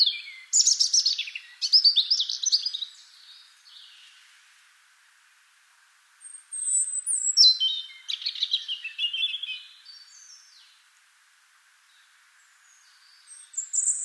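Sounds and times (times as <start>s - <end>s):
European robin Erithacus rubecula song of sweet high whistles and jangling trill: 0.0s - 4.2s, 6.1s - 10.9s, 11.9s - 14.0s.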